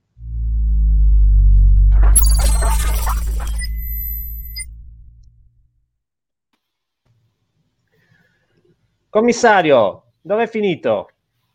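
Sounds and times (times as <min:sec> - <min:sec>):
radio show theme jingle with loud deep synth drone: 0:00.0 - 0:05.7
bright noisy sparkling tones and high sustained notes: 0:02.0 - 0:04.8
speech: 0:09.2 - 0:11.1.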